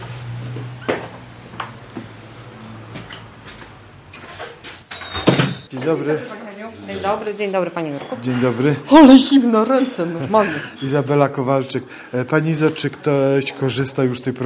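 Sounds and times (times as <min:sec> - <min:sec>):
squeaky office door opening in a courtyard: 0:04.3 - 0:05.7
speech: 0:05.8 - 0:14.4.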